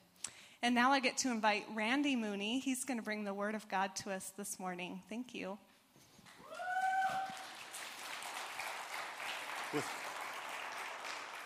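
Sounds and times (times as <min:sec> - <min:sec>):
speech: 0:00.6 - 0:05.7, 0:09.7 - 0:10.0
audience at a church service clapping to welcome a speaker: 0:06.5 - 0:11.4.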